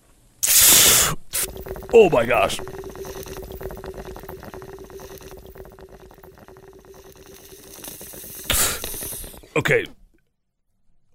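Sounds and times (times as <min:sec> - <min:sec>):
brief louder hiss: 0:00.4 - 0:01.5, 0:07.6 - 0:09.5
water pouring into a bong: 0:01.3 - 0:09.7
speech: 0:01.9 - 0:02.8, 0:09.6 - 0:10.0.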